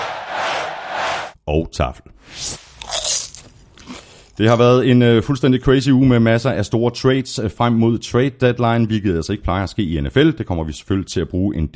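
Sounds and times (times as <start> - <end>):
speech: 1.5 - 2.6, 4.4 - 11.7
popcorn being chewed with crisp crunching: 2.8 - 4.4.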